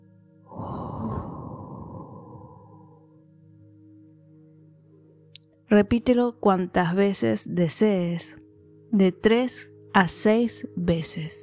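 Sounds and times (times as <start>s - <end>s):
deep inhale: 0.5s - 3.2s
long breathy exhale as kidney healing sound in a breathing exercise: 0.5s - 3.2s
steady low droning hum: 0.5s - 3.4s
speech: 5.7s - 11.4s.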